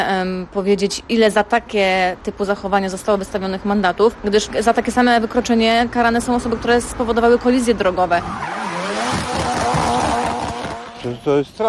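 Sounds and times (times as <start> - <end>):
speech: 0.2 - 8.7, 11.0 - 11.6
car engine roar: 6.2 - 11.2
car tires squealing on a street: 8.1 - 11.1.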